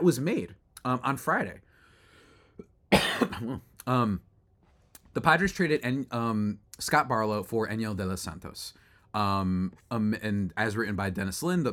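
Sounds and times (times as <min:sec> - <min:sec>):
speech: 0:00.0 - 0:01.7, 0:02.9 - 0:04.3, 0:05.2 - 0:11.7
person coughing: 0:02.9 - 0:03.7.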